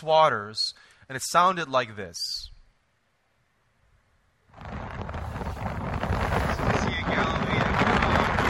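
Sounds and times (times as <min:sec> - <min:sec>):
speech: 0:00.0 - 0:02.5
strong wind on a phone microphone on a boat on a lake: 0:04.5 - 0:08.4.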